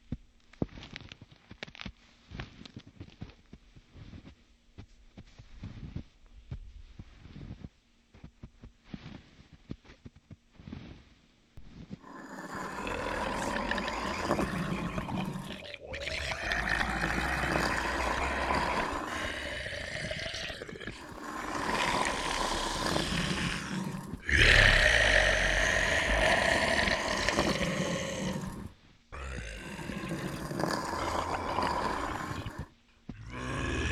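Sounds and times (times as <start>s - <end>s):
zombie calmly shuffling: 12.0s - 33.9s.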